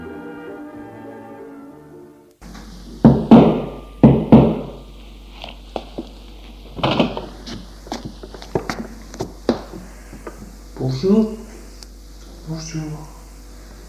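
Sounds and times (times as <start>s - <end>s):
knocking on the door of a home: 3.0s - 4.8s
speech: 11.0s - 11.4s, 12.6s - 13.1s.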